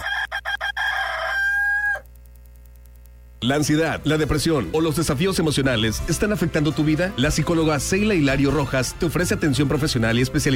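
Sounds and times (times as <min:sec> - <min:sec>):
rooster crowing a stuttering cock-a-doodle-doo: 0:00.0 - 0:02.1
speech: 0:03.4 - 0:10.5.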